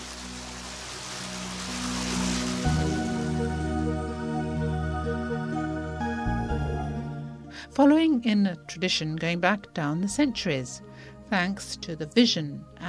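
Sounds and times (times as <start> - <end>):
water running from a Roman street fountain: 0.0 - 3.6
sustained musical tones: 1.6 - 8.3
speech: 7.8 - 12.8.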